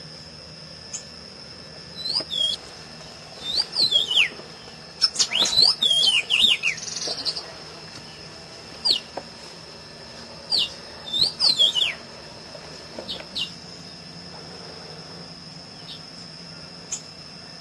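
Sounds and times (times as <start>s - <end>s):
constant high whine: 0.0s - 17.5s
masked yellowthroat singing warbled phrases: 2.0s - 2.6s, 3.4s - 4.4s, 5.0s - 7.4s, 10.5s - 12.1s.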